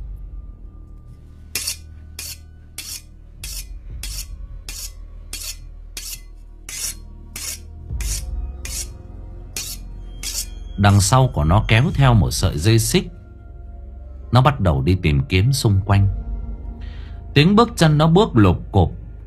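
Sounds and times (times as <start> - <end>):
continuous low hum: 0.0 - 14.7, 15.7 - 17.3
sharp scissor-like claws grinding together: 1.5 - 9.0, 9.6 - 10.6
big butcher's knife being rubbed: 1.5 - 10.8
speech: 10.8 - 13.2, 14.3 - 16.2, 17.4 - 19.2.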